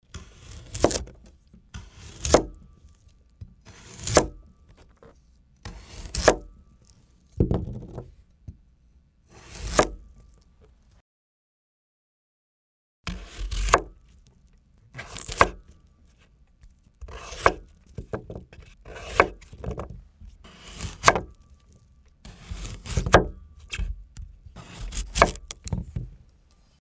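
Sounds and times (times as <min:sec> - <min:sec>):
radish cutting: 0:00.2 - 0:05.0, 0:05.6 - 0:07.0, 0:09.3 - 0:10.4, 0:13.1 - 0:14.3, 0:14.9 - 0:25.9.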